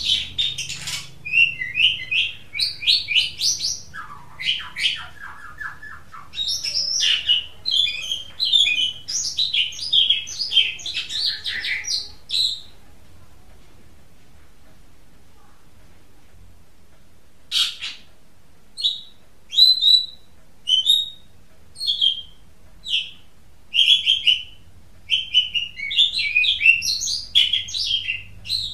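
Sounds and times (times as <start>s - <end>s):
Oriental magpie-robin whistling and chirping: 0.0s - 12.7s, 18.8s - 28.7s.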